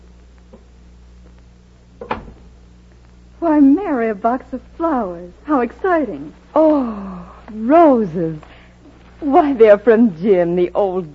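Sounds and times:
faint steady hum: 0:00.0 - 0:11.1
wooden door opening with latch rattle: 0:02.0 - 0:02.6
speech: 0:03.5 - 0:08.5, 0:09.2 - 0:11.1.

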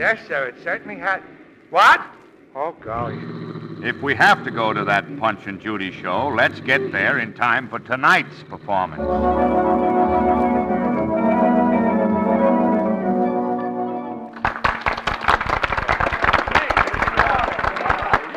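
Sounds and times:
speech: 0:00.0 - 0:10.4
sustained ringing musical tone: 0:09.0 - 0:14.3
applause at a puppet show: 0:14.3 - 0:18.3.

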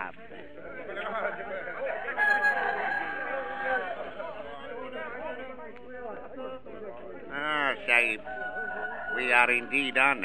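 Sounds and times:
dense noisy crowd chattering: 0:00.0 - 0:10.2
laughter: 0:00.0 - 0:10.2
fighting rooster crowing: 0:02.2 - 0:04.1, 0:08.0 - 0:10.2
speech: 0:09.4 - 0:10.2.

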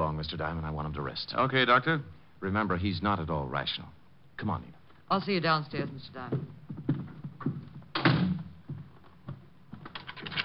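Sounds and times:
speech: 0:00.2 - 0:06.8
door shutting: 0:07.9 - 0:08.5.

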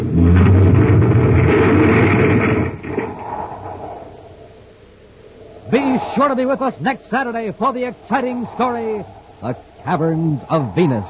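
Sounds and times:
vehicle crashing into rubble in a tunnel: 0:00.0 - 0:04.1
debris rattling and settling: 0:00.0 - 0:04.4
speech: 0:06.2 - 0:11.0.

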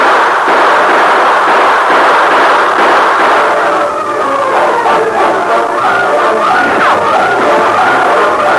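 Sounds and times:
dense volley of gunfire: 0:00.0 - 0:08.5
indistinct shouts: 0:03.3 - 0:08.5.

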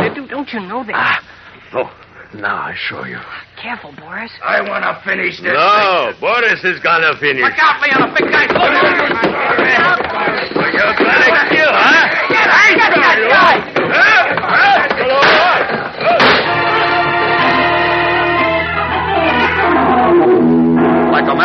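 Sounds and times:
speech: 0:00.3 - 0:15.2, 0:21.2 - 0:21.4
people shouting: 0:07.5 - 0:20.3
crashing impacts of a brawl: 0:07.6 - 0:18.1
chair smashing: 0:07.6 - 0:18.4
gunshots: 0:15.1 - 0:16.8
sustained musical tones: 0:16.2 - 0:21.4.

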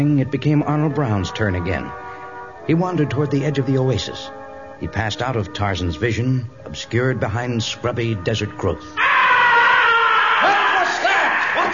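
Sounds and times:
speech: 0:00.0 - 0:02.0, 0:02.6 - 0:09.2
man screaming: 0:09.0 - 0:11.7.

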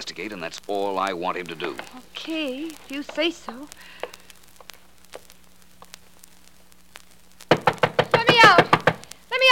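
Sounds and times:
speech: 0:00.0 - 0:04.1
fist pounding on a door: 0:07.5 - 0:09.0.

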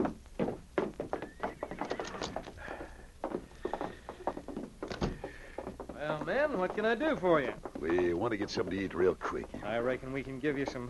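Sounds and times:
horse hooves clopping behind a small roadhouse: 0:00.0 - 0:10.8
horse whinnying: 0:01.1 - 0:03.1
speech: 0:06.2 - 0:10.8.

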